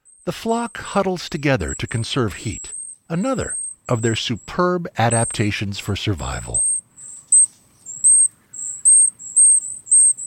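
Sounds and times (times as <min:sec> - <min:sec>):
speech: 0:00.2 - 0:06.7
kinglet giving high thin call notes in winter: 0:01.6 - 0:05.6, 0:06.3 - 0:10.2.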